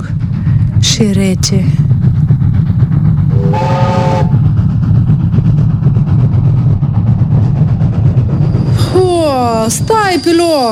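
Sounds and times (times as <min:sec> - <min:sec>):
long black train rumbling on a railway line: 0:00.0 - 0:10.7
speech: 0:01.0 - 0:01.9, 0:09.1 - 0:10.7
brief tonal train whistle: 0:03.3 - 0:04.4.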